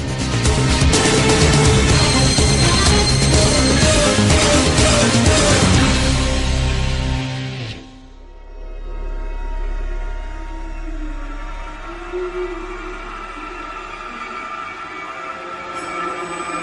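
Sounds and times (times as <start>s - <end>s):
deep rumbling low drone: 0.0s - 16.3s
instrumental soundtrack music: 0.0s - 16.6s.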